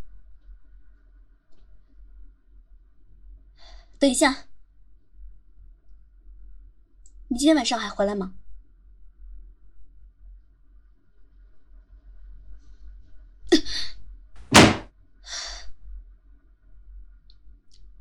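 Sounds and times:
speech: 4.0 - 4.5, 7.4 - 8.4
door slamming shut: 14.4 - 14.9
soft bump: 14.5 - 14.9.

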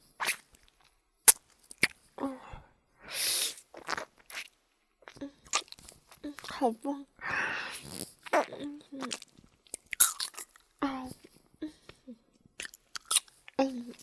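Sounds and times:
chewing and crunching a lollipop: 0.2 - 2.2, 3.6 - 6.6, 7.8 - 14.0
speech: 6.6 - 9.4.

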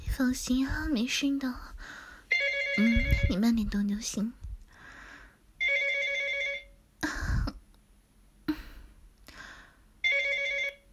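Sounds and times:
speech: 0.1 - 2.0, 2.8 - 4.4
phone ringing with electronic warbling ringtone: 2.3 - 3.6, 5.6 - 6.8, 10.0 - 10.9.

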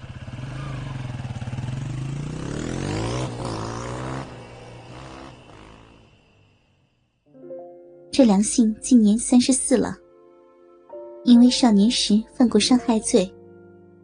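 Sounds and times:
motorcycle engine revving as rider pulls away carrying a gas cylinder: 0.0 - 7.2
speech: 8.2 - 10.0, 11.2 - 13.4.

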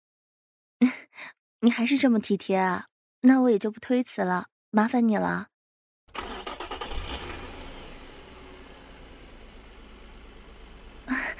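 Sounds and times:
speech: 1.2 - 5.5
sports car engine starting: 6.1 - 11.3.

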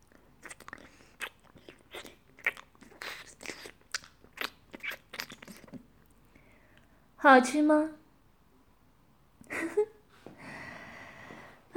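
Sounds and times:
wet licking and mouth sounds: 0.0 - 6.2
speech: 7.2 - 8.0.

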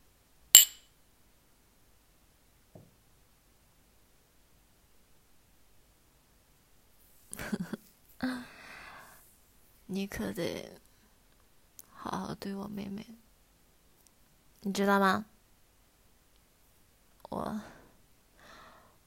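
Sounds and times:
glasses clinking in a toast: 0.6 - 0.8
speech: 9.9 - 10.8, 12.1 - 13.2, 14.6 - 15.3, 17.3 - 17.8.

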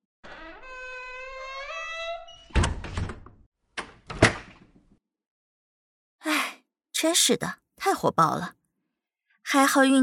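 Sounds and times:
door creaking while being closed: 0.2 - 4.7
speech: 7.0 - 8.6, 9.5 - 10.0.

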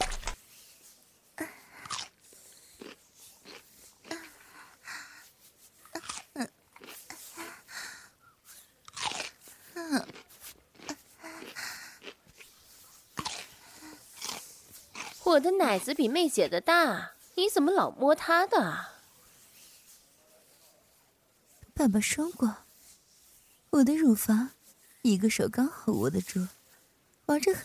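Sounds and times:
person biting and chewing cucumber: 0.0 - 16.2
speech: 15.3 - 18.9, 21.8 - 22.6, 23.8 - 26.6, 27.3 - 27.6.

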